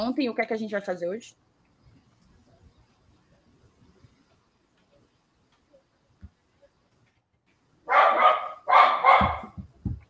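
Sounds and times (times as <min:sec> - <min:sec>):
speech: 0:00.0 - 0:01.5
dog barking: 0:07.9 - 0:09.6
low thumps: 0:09.1 - 0:10.0.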